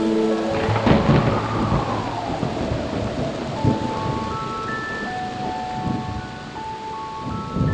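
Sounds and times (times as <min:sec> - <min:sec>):
gliding note: 0:00.0 - 0:07.3
deep thunder rumbling and rolling: 0:00.0 - 0:07.7
faint sustained musical tones: 0:00.0 - 0:07.7
steady rain hissing: 0:00.0 - 0:07.7.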